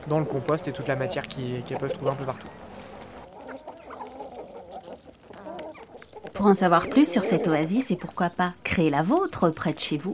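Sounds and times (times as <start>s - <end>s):
outdoor noise: 0.0s - 10.1s
several hens clucking: 0.0s - 10.1s
speech: 0.1s - 2.9s, 6.4s - 10.1s.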